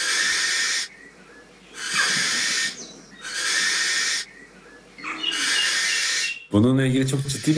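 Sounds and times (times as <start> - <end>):
barn owl chick hissing screech: 0.0 - 0.9, 1.8 - 4.3, 5.0 - 6.5, 7.3 - 7.5
speech: 6.6 - 7.5.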